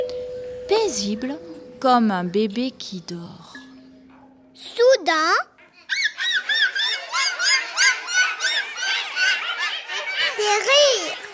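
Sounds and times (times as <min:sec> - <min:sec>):
speech: 0:00.7 - 0:03.5, 0:04.6 - 0:05.5, 0:10.4 - 0:11.2
hyena laughing: 0:05.7 - 0:10.8.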